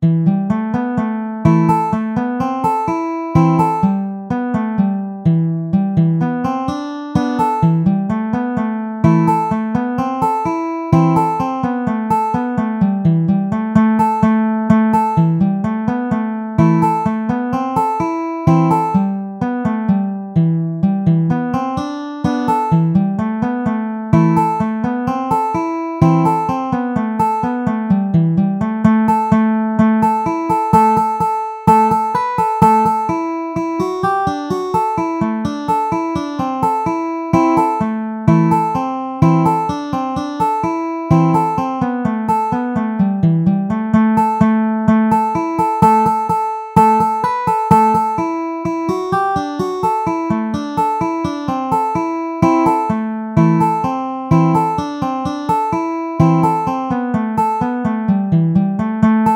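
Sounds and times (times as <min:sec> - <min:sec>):
banjo music: 0:00.0 - 0:59.3.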